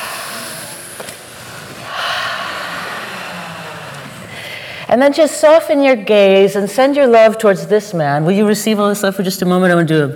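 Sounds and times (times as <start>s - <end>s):
room full of people inhaling together: 0.0s - 4.9s
speech: 1.0s - 1.2s, 4.9s - 10.1s.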